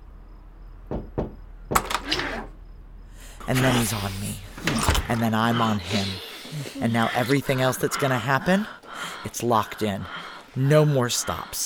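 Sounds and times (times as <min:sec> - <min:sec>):
dull knocks on a motel room door: 0:00.9 - 0:01.9
louder rattling thump with a brief clatter: 0:00.9 - 0:02.3
speech: 0:03.5 - 0:11.6.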